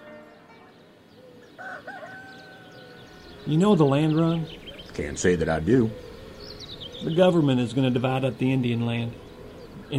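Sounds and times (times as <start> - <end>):
rooster crowing: 1.3 - 3.5
speech: 3.5 - 6.0, 7.0 - 9.2.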